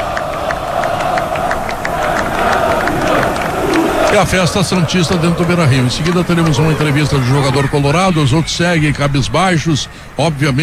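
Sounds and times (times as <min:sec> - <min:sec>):
large stadium crowd applauding and cheering: 0:00.0 - 0:10.6
laughter: 0:00.0 - 0:10.6
speech: 0:04.2 - 0:10.6.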